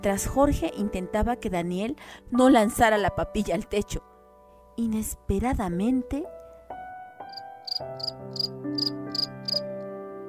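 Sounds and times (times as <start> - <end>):
speech: 0.0 - 4.1, 4.8 - 6.4
cricket chirping on a breakfast table: 7.6 - 9.6.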